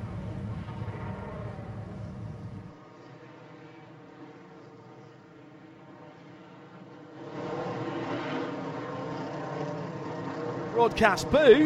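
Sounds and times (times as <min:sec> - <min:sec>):
race car engines revving leaving pit lane: 0:00.0 - 0:03.4, 0:04.4 - 0:11.6
speech: 0:10.8 - 0:11.6.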